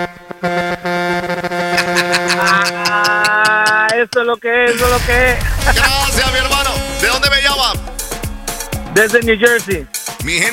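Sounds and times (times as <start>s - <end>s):
speech: 0.0s - 0.6s, 4.0s - 7.8s, 9.0s - 10.5s
loud brassy truck horn honking: 0.0s - 5.0s, 6.4s - 8.9s
laughter: 1.7s - 4.1s, 4.7s - 6.6s.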